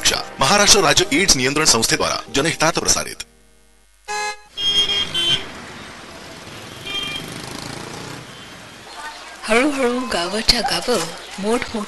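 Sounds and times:
speech: 0:00.1 - 0:03.3, 0:09.5 - 0:11.8
car horn honks in road traffic: 0:04.1 - 0:08.8
rumbling road traffic with cars: 0:04.5 - 0:11.8.

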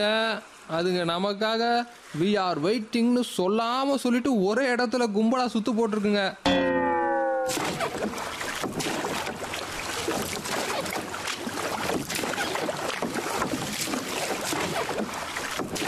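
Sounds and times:
speech: 0:00.0 - 0:06.8, 0:07.5 - 0:08.2
boat moving across water toward a group of sharks: 0:07.5 - 0:15.8.

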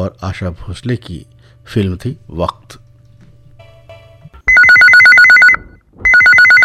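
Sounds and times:
speech: 0:00.0 - 0:02.8
telephone ringing with a rapid warbling two-tone trill: 0:04.5 - 0:06.6.

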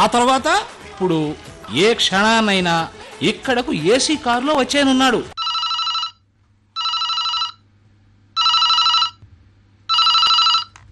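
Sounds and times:
speech: 0:00.0 - 0:05.4
telephone ringing with loud bright trilling bursts: 0:05.4 - 0:06.2, 0:06.8 - 0:07.6, 0:08.4 - 0:09.2, 0:09.9 - 0:10.8.

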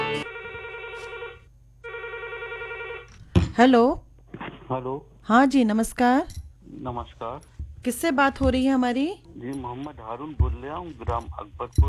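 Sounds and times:
telephone ringing with a steady electronic tone: 0:00.0 - 0:03.1
speech: 0:03.6 - 0:04.0, 0:04.7 - 0:11.8.

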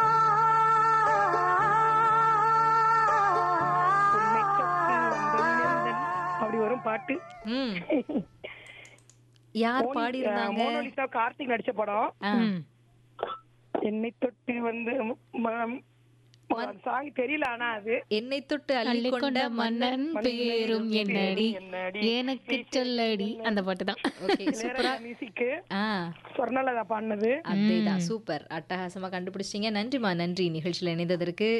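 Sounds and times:
female singer humming a song melody: 0:00.0 - 0:08.3, 0:12.2 - 0:12.6, 0:27.5 - 0:28.1
speech: 0:07.0 - 0:08.3, 0:09.5 - 0:12.7, 0:13.8 - 0:15.9, 0:16.5 - 0:31.5.

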